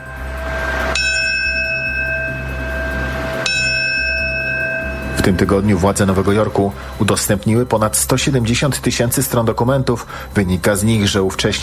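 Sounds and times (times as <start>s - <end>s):
memorial bell tolling: 0.0s - 8.6s
speech: 5.3s - 11.6s.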